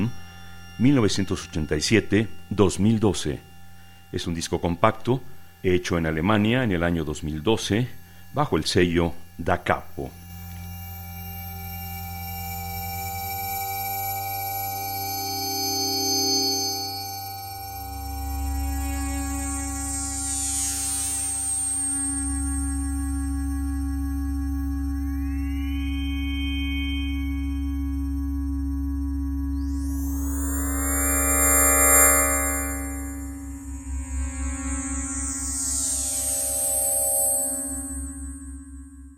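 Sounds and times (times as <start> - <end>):
low sine tone drones from FM modules: 0.0 - 39.1
speech: 0.8 - 3.5, 4.1 - 10.2.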